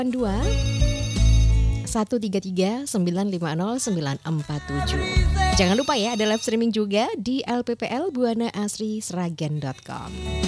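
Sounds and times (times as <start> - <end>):
speech: 0.0 - 0.9, 1.9 - 10.4
electronic telephone ring for an incoming caller on a phone-in line: 0.4 - 1.9, 5.6 - 6.8.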